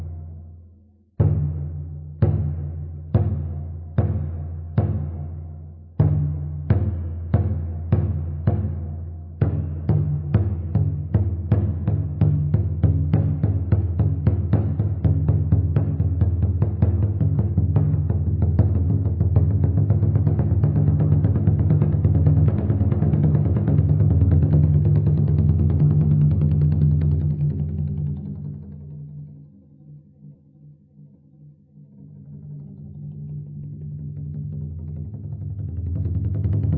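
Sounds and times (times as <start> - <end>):
drum beating: 1.2 - 27.9, 34.8 - 36.7.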